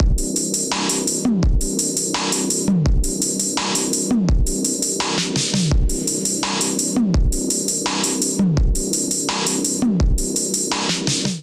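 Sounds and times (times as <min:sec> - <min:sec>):
melodic drum loop at 84 bpm: 0:00.0 - 0:11.4.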